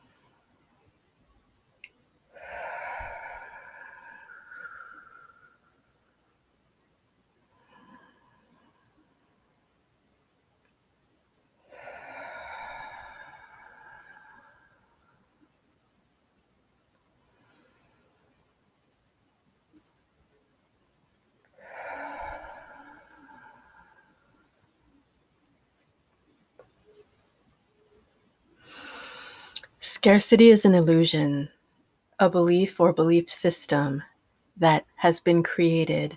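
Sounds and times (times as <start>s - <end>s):
deep slow breathing in through the nose and out through the mouth: 2.3s - 6.2s, 7.4s - 9.4s, 11.6s - 15.4s, 21.5s - 25.0s, 28.6s - 29.7s
speech: 30.0s - 31.6s, 32.2s - 36.1s.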